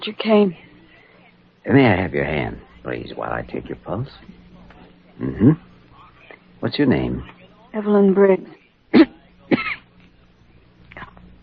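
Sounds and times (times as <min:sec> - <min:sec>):
speech: 0:00.0 - 0:00.6, 0:01.6 - 0:04.4, 0:05.2 - 0:05.7, 0:06.6 - 0:09.1
feverish weak patient coughing: 0:08.9 - 0:09.8.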